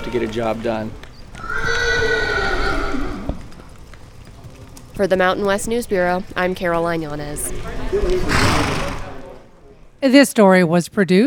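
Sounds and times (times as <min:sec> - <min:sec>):
faint hoof clops: 0:00.0 - 0:09.5
speech: 0:00.1 - 0:01.0, 0:05.0 - 0:08.8, 0:10.0 - 0:11.2
horse whinnying: 0:01.4 - 0:03.5, 0:07.5 - 0:09.4.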